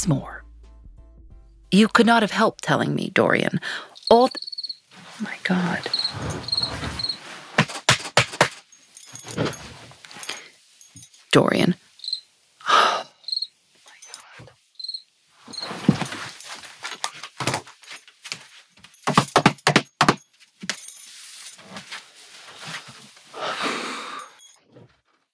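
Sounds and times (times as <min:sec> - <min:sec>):
speech: 0:00.0 - 0:00.4, 0:01.7 - 0:04.5, 0:05.2 - 0:06.9, 0:11.3 - 0:11.8
crickets chirping: 0:03.3 - 0:07.4, 0:08.8 - 0:17.0
rustling and scraping clatter: 0:04.0 - 0:11.3, 0:15.4 - 0:23.4.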